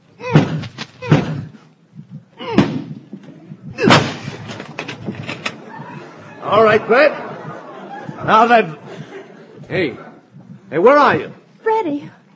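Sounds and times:
rattling and clattering as the door gives way: 2.9 - 5.8
door crashing as it gives way: 3.8 - 5.7
laughter: 4.7 - 10.5
speech: 6.5 - 7.2, 8.2 - 8.8, 9.7 - 10.0, 10.7 - 12.2.

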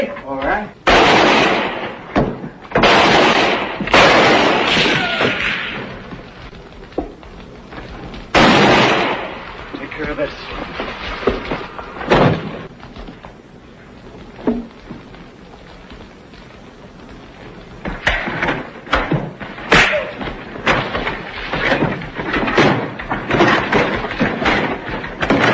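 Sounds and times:
gunfire aimed toward a wagon in a shootout: 0.8 - 6.4, 8.3 - 12.7, 17.8 - 25.5
heavy thuds: 3.6 - 25.5
rumbling scuffling noise: 3.7 - 25.5.

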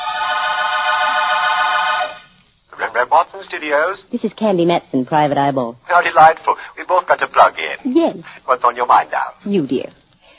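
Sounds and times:
telephone ringing in a penthouse on Telegraph Hill: 0.0 - 2.3
speech: 3.0 - 10.0.

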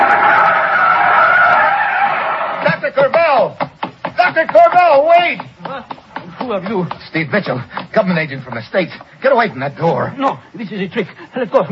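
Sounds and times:
car braking hard with skidding tires screeching: 0.0 - 2.7
speech: 2.9 - 3.6, 4.3 - 5.5, 6.4 - 11.7.

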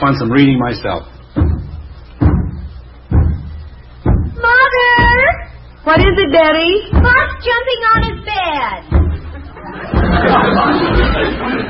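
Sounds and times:
speech: 0.0 - 1.6, 6.0 - 9.1, 9.7 - 11.6
heavy booming knocks on a door by the mailman: 1.4 - 5.4, 6.9 - 8.3, 8.9 - 10.4
laughter: 9.0 - 11.6.

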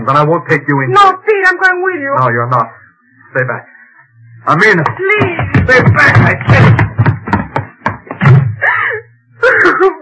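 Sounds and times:
speech: 0.0 - 3.7, 4.4 - 6.9
heavy pounding on a door: 4.9 - 8.6.

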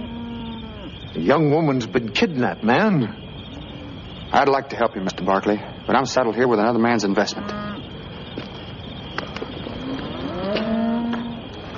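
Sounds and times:
steady outdoor din: 0.0 - 11.7
speech: 1.2 - 3.2, 4.3 - 7.7
herd of cattle on a cattle drive mooing: 7.3 - 7.8, 9.8 - 11.4.

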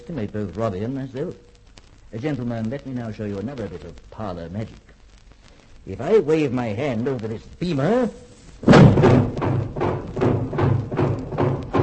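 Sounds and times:
speech: 0.0 - 1.5, 2.1 - 4.9, 5.8 - 9.4
heavy steel shutters slamming shut over doors and windows: 8.6 - 11.8.

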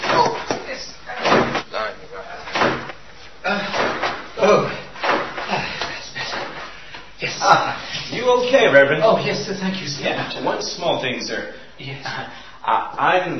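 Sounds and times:
revolving door turning with panels bumping: 0.0 - 1.7, 2.4 - 6.8
speech: 8.4 - 13.3.

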